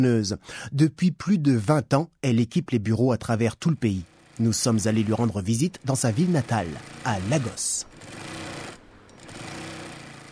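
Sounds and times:
speech: 0.0 - 8.4
sewing machines clattering at high speed in an office-chair factory in Lagos: 3.7 - 10.2.

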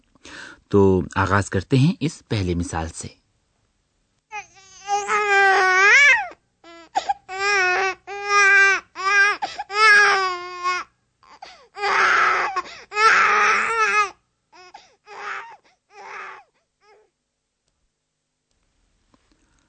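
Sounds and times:
speech: 0.7 - 3.2
baby crying and wailing: 4.3 - 17.1.

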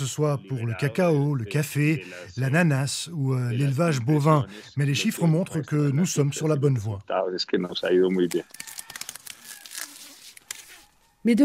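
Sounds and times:
speech: 0.0 - 8.8, 11.2 - 11.4
coca leaves being stripped from stems: 8.2 - 11.0.

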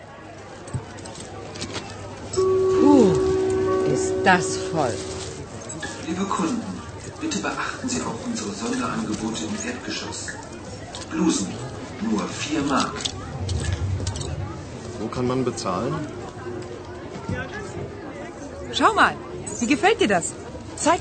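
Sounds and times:
crowd chatter in a packed indoor shopping centre: 0.0 - 20.9
tonal chime: 2.4 - 5.4
speech: 4.2 - 5.1, 6.1 - 13.7, 15.0 - 16.2, 18.8 - 20.9.

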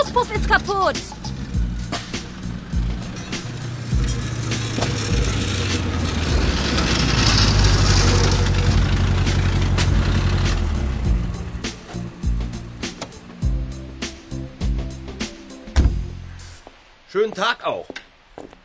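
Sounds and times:
old worn car engine idling roughly at a repair garage: 0.0 - 11.8
leaky car exhaust chugging and sputtering: 0.0 - 16.3
speech: 0.1 - 1.2, 17.2 - 18.0.

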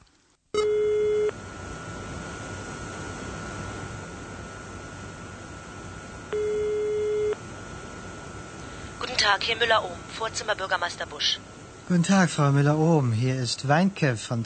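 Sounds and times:
telephone line hum over hiss: 0.5 - 11.4
telephone ringing tones on a handset while a call is placed: 0.6 - 1.4, 6.3 - 7.4
speech: 9.2 - 14.4.

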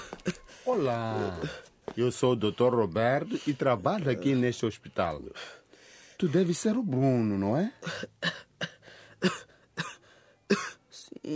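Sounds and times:
speech: 0.2 - 5.6, 6.2 - 9.4
harsh broadband coughs: 7.8 - 10.8.

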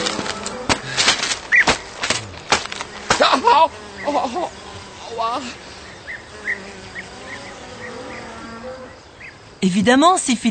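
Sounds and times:
flies buzzing in the countryside: 0.0 - 10.5
faint chirping: 2.8 - 10.5
speech: 3.6 - 5.6, 9.6 - 10.5.

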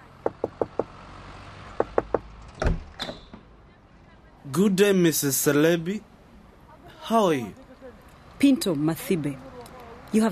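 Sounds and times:
crisp knocking on a door: 0.2 - 0.9, 1.8 - 2.3
speech: 4.5 - 6.1, 7.1 - 7.6, 8.4 - 9.5, 10.1 - 10.3.

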